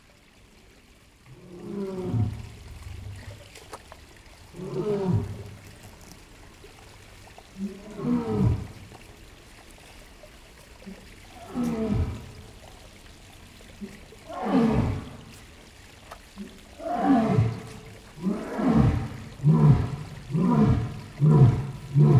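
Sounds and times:
stream in a zoo: 0.0 - 22.1
lion roaring in a zoo: 4.5 - 6.1, 7.6 - 8.9, 11.3 - 12.6, 14.2 - 15.4, 16.8 - 22.1.

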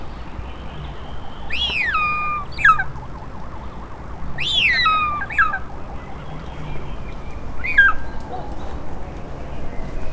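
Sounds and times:
short-toed snake eagle calling: 0.2 - 9.2.

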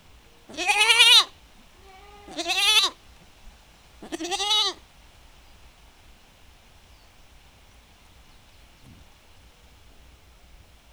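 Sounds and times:
faint lower domestic goat call: 0.4 - 3.2, 4.0 - 4.9
domestic goat bleating in a farmyard: 0.5 - 3.0, 4.0 - 4.8.

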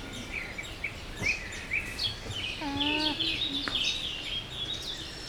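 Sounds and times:
small birds chirping and tweeting: 0.1 - 4.9
captive llama humming at a zoo: 2.6 - 3.8.

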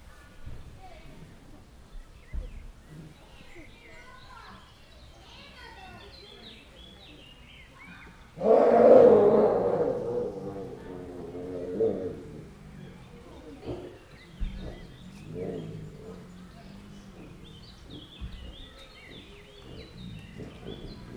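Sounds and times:
Bengal tigers mating in Gyor zoo: 8.2 - 21.1.

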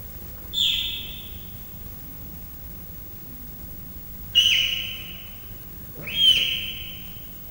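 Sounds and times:
three-month-old captive leopard cubs chirping and meowing at a zoo in Miskolc: 0.5 - 1.6, 4.4 - 5.4, 6.0 - 7.4.

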